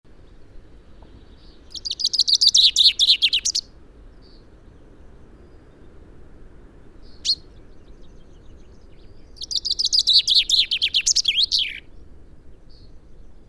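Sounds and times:
common chaffinch Fringilla coelebs singing rattling phrases: 1.1 - 3.7, 7.0 - 11.9.

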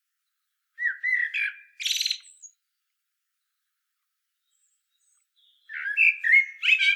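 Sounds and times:
common blackbird Turdus merula singing a fluty whistled phrase: 0.8 - 2.6, 4.5 - 6.9.

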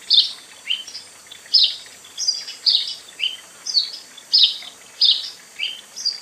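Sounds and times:
faint background hiss: 0.0 - 6.1
house sparrow Passer domesticus chirping: 0.1 - 6.1.

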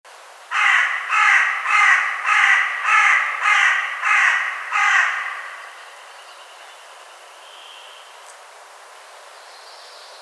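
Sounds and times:
carrion crow cawing: 0.5 - 6.1.

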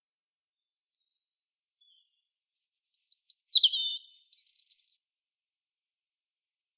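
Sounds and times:
European robin song, Erithacus rubecula: 0.6 - 5.2.

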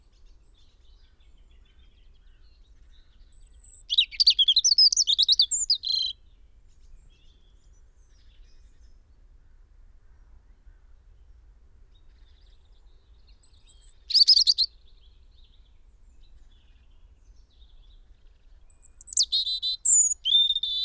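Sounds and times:
European robin singing: 0.0 - 7.4, 12.0 - 20.8.

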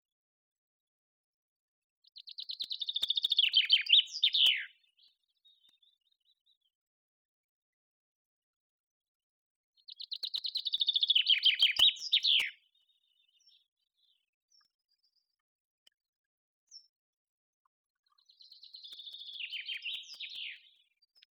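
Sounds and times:
common chaffinch Fringilla coelebs song: 2.0 - 6.9, 9.8 - 16.0, 18.0 - 21.3.

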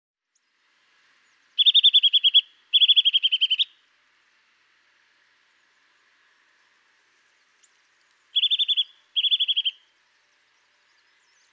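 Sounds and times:
Eurasian nuthatch Sitta europaea piping call: 1.3 - 3.8, 7.6 - 11.5.

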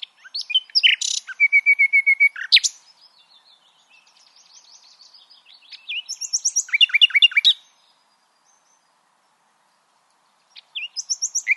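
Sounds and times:
common nightingale Luscinia megarhynchos song: 0.0 - 11.5.

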